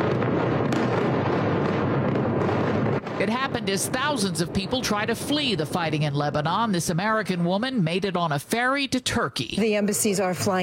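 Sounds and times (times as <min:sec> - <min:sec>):
sharper blasts: 0:00.0 - 0:07.4
continuous barrage of explosions near an airport: 0:00.0 - 0:08.8
speech: 0:03.2 - 0:10.6.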